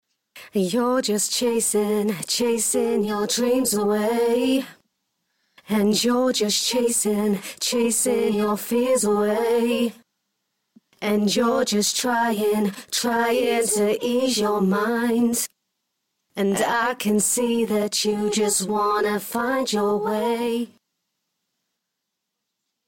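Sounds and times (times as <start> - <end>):
a cappella vocals for dance music in G sharp: 0.4 - 4.8, 5.6 - 10.1, 10.9 - 15.6, 16.4 - 20.8.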